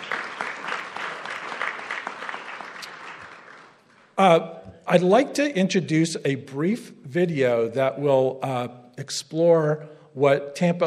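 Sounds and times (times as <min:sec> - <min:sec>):
audience at a sustainability series event clapping: 0:00.0 - 0:04.2
speech: 0:04.2 - 0:10.8.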